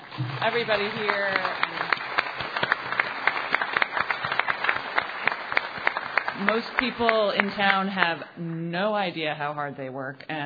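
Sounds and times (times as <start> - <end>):
crowd applauding the town staff: 0.0 - 8.2
speech: 0.2 - 1.8, 6.4 - 10.4.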